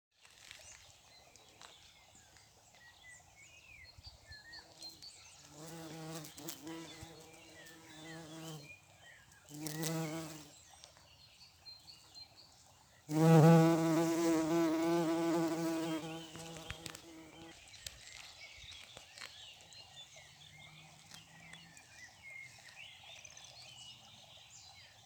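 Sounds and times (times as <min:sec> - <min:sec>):
bumblebees: 0:05.6 - 0:08.7, 0:09.5 - 0:10.5, 0:13.1 - 0:17.5.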